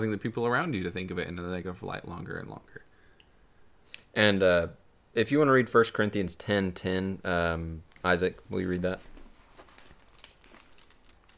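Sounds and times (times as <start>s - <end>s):
speech: 0.0s - 2.9s, 4.2s - 9.1s
thin paper Bible pages being flipped: 9.0s - 11.3s.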